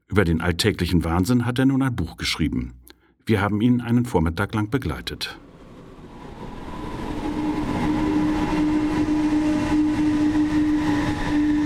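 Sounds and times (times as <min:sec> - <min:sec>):
speech: 0:00.1 - 0:05.4
train rumbling at a station: 0:03.8 - 0:11.6.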